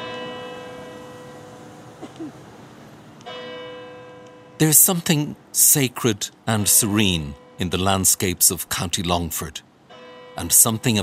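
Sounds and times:
church bells chiming the quarter hour in Longford town, County Longford: 0.0 - 2.0, 3.2 - 8.9, 9.8 - 11.0
speech: 2.1 - 2.6, 4.6 - 9.7, 10.4 - 11.0.

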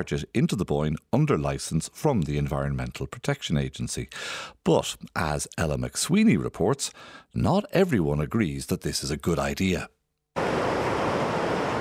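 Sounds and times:
speech: 0.0 - 10.0
river water flowing past old mill: 10.4 - 11.7.

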